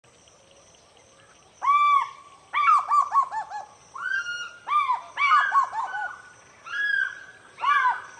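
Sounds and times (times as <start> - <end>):
African fish eagles calling at dawn over water in Senegal: 1.6 - 8.1.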